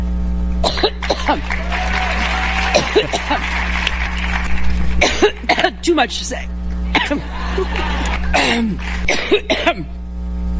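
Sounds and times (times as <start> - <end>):
steady low hum: 0.0 - 10.5
elderly woman coughing: 0.6 - 1.4, 2.8 - 3.5, 5.0 - 5.9, 6.9 - 7.3, 8.3 - 9.9
speech: 0.8 - 1.9, 2.9 - 3.8, 5.0 - 10.0
laughter: 1.2 - 5.5, 7.0 - 9.1.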